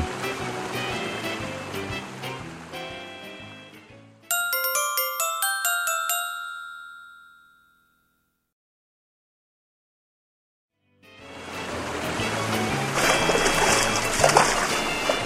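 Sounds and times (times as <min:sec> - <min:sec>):
water splashing from a platypus mother and babies swimming: 0:00.0 - 0:03.1, 0:11.5 - 0:15.2
bright chiming melody: 0:04.3 - 0:08.2.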